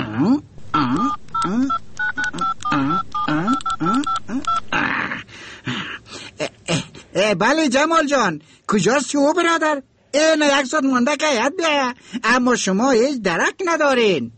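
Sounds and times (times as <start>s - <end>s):
voiced sounds: 0.0s - 7.2s
speech: 0.2s - 1.8s, 7.3s - 14.3s
noisy burst: 0.2s - 5.5s
sharp clicks: 0.8s - 4.7s
telephone number being dialed on a keypad: 0.8s - 4.7s.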